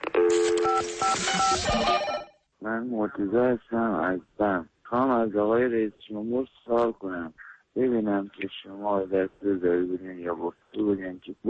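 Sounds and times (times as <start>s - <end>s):
telephone answering machine beeps: 0.0s - 2.4s
speech: 0.8s - 11.4s.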